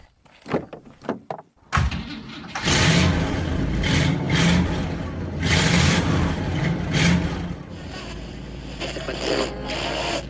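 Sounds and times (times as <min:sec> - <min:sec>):
big engine of a large Chevrolet car revving and pulling away on the road in the United States: 0:02.5 - 0:10.2.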